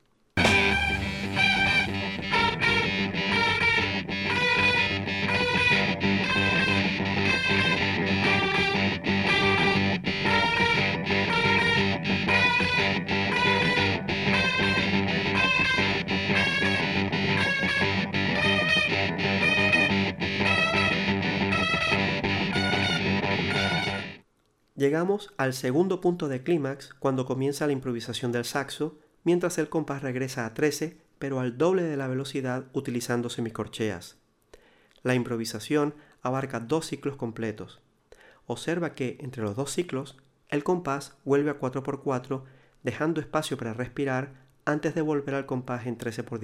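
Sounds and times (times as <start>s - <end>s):
two syncopated rhythm guitars playing choppy stabs: 0.4s - 24.2s
speech: 24.8s - 34.2s, 35.0s - 37.8s, 38.5s - 46.4s.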